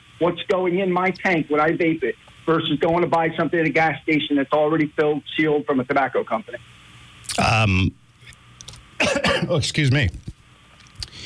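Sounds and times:
speech: 0:00.2 - 0:06.7, 0:07.4 - 0:08.0, 0:09.5 - 0:10.2
throat clearing and coughing from a tickle in the throat: 0:09.0 - 0:09.6.

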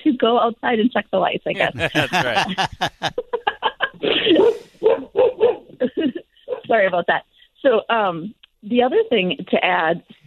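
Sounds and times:
speech: 0:00.2 - 0:03.3, 0:06.7 - 0:10.2
laughter: 0:01.6 - 0:04.7
hound dog barking and baying: 0:04.4 - 0:05.7.

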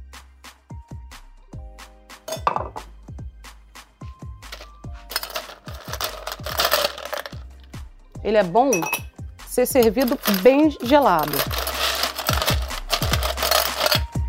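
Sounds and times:
drinking glass clinking as it is set down to chill: 0:02.3 - 0:02.8, 0:08.7 - 0:09.2
drinking glass scraping and rattling: 0:04.6 - 0:07.5, 0:08.8 - 0:09.1, 0:09.8 - 0:14.2
speech: 0:08.3 - 0:09.0, 0:09.6 - 0:11.6.

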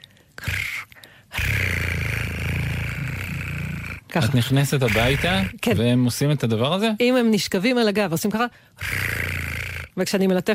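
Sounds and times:
person imitating a cat's purr: 0:00.4 - 0:05.8, 0:08.8 - 0:10.0
speech: 0:04.2 - 0:09.1, 0:10.0 - 0:10.5.

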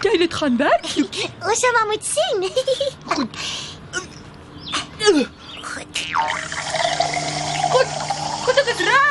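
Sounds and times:
speech: 0:00.0 - 0:03.7, 0:05.1 - 0:05.4
water poured into a container for drinking: 0:06.2 - 0:08.6.

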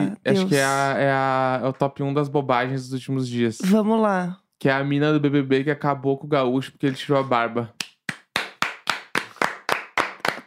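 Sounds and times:
speech: 0:00.2 - 0:07.8
single person clapping hands: 0:07.6 - 0:10.4.

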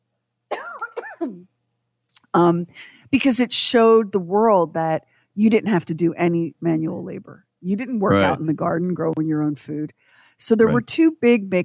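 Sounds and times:
throaty coughs: 0:00.5 - 0:01.4
speech: 0:01.2 - 0:01.6, 0:02.3 - 0:11.6.

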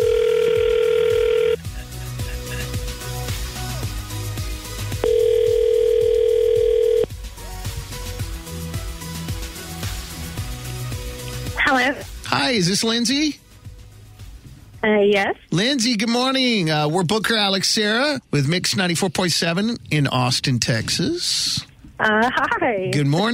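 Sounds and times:
outgoing phone call ringing tone: 0:00.0 - 0:01.7, 0:05.0 - 0:07.1
soft music: 0:00.0 - 0:18.4, 0:22.4 - 0:23.3
speech: 0:12.5 - 0:13.4, 0:14.9 - 0:23.3.

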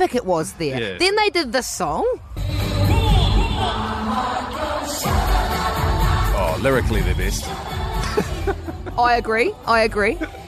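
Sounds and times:
speech: 0:00.0 - 0:02.5, 0:06.6 - 0:10.4
large concert crowd shouting and cheering: 0:02.3 - 0:06.8
laughter: 0:08.0 - 0:09.3, 0:09.9 - 0:10.4.

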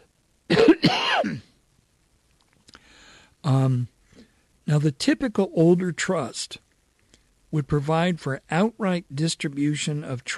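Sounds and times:
person coughing: 0:00.5 - 0:01.5
speech: 0:03.4 - 0:04.0, 0:04.7 - 0:06.6, 0:07.5 - 0:10.3.

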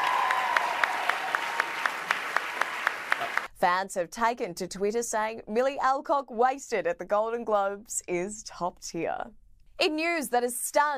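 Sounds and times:
audience applauding at an awards ceremony: 0:00.0 - 0:03.5
individual loud claps: 0:00.0 - 0:03.5
speech: 0:03.6 - 0:10.9.

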